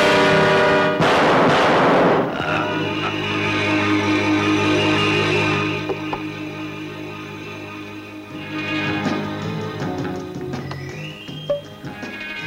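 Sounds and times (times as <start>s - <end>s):
gunshot in a crime film scene: 0.0s - 2.5s
sustained musical tones: 2.3s - 12.4s.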